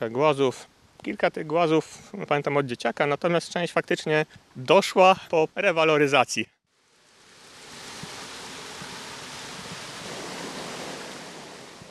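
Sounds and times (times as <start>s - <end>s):
speech: 0.0s - 6.6s
stream water tumbling over a small cascade: 7.2s - 11.9s.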